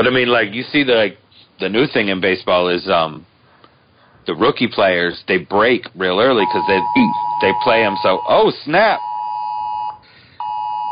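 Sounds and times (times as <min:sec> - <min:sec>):
speech: 0:00.0 - 0:03.3, 0:04.2 - 0:09.1
phone emergency flood-warning alert tone: 0:06.4 - 0:10.9.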